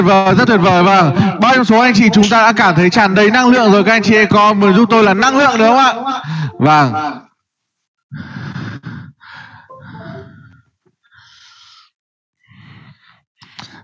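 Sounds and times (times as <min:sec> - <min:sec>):
speech: 0:00.0 - 0:07.3, 0:08.1 - 0:08.4
heavy breathing into the microphone: 0:08.1 - 0:13.8.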